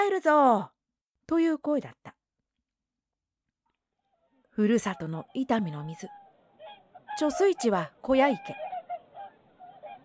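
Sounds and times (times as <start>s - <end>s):
speech: 0.0s - 2.2s, 4.6s - 6.2s, 7.2s - 8.7s
migrating swans honking: 4.8s - 10.0s.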